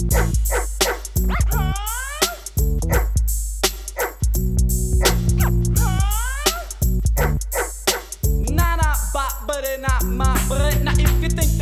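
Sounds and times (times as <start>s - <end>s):
thumping musical beat with sustained bass tones: 0.0s - 11.6s
dog-like barks and rising yelps: 0.1s - 3.1s, 4.0s - 4.2s, 7.2s - 8.1s.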